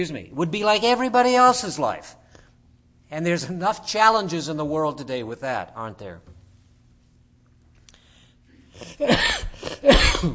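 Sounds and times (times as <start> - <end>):
speech: 0.0 - 2.2, 3.1 - 6.4, 8.8 - 10.3
person coughing while recovering from a cold: 8.7 - 10.3
throat clearing: 8.8 - 10.3.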